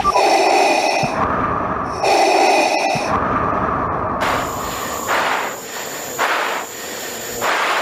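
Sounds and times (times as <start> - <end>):
heavy breathing over team radio: 0.0 - 1.3, 1.9 - 3.2, 4.2 - 7.8
steady noise: 0.0 - 7.8.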